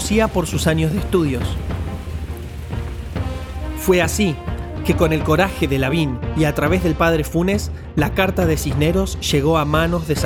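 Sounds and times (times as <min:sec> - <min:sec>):
low rumbling: 0:00.0 - 0:05.9
heavy rain pouring during a storm: 0:00.0 - 0:07.0
speech: 0:00.1 - 0:01.8, 0:03.8 - 0:10.2.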